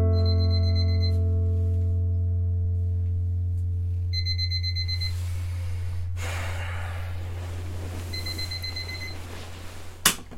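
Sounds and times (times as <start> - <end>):
electronic alarm clock beeping: 0.1 - 1.4, 4.1 - 5.2, 8.1 - 9.3
steady low hum: 0.1 - 10.0
soft rustling breaths: 4.9 - 10.0.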